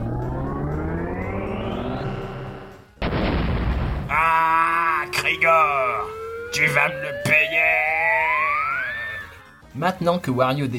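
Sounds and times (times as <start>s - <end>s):
rising whistling tone: 0.0s - 2.7s, 5.1s - 9.3s
cannon firing a character out: 3.0s - 4.1s
speech: 5.3s - 7.8s, 9.8s - 10.7s.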